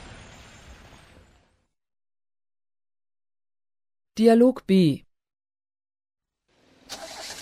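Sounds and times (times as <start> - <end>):
speech: 4.2 - 5.1
car engine cranking without catching: 6.8 - 7.4.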